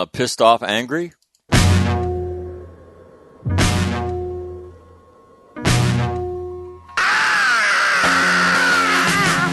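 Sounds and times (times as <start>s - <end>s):
speech: 0.2s - 1.2s
heavy ringing hits: 1.6s - 7.0s
man's loud exuberant yelling scream: 7.0s - 9.4s.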